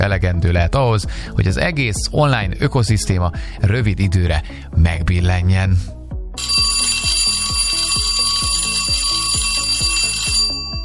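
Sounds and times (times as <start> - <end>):
speech: 0.0 - 6.7
ringing bell signal: 6.4 - 10.8.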